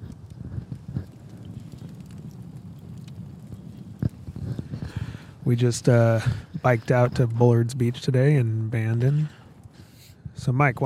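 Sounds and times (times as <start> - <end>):
campfire crackling at Bullards Beach in Bandon in mid-December: 0.0 - 10.8
low rumbling breezy background: 0.0 - 10.8
speech: 5.5 - 9.4, 10.4 - 10.8.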